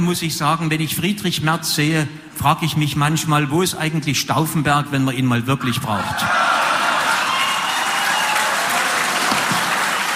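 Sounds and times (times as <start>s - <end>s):
speech: 0.0s - 6.6s
live audience applause: 6.3s - 10.1s.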